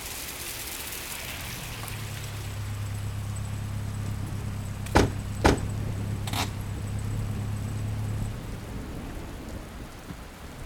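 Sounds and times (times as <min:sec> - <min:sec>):
black car engine idling at a station rotary: 0:00.0 - 0:10.6
sharp clunks: 0:04.8 - 0:06.6.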